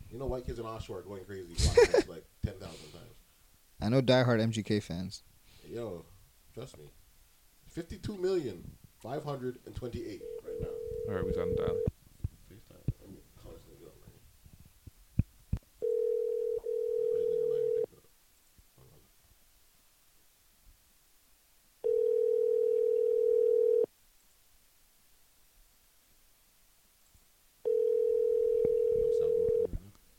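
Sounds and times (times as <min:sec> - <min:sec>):
speech: 0:00.1 - 0:07.0, 0:07.7 - 0:10.4, 0:11.1 - 0:11.9
telephone ringback tone while a call is placed: 0:10.1 - 0:11.9, 0:15.8 - 0:17.9, 0:21.9 - 0:23.9, 0:27.7 - 0:29.7.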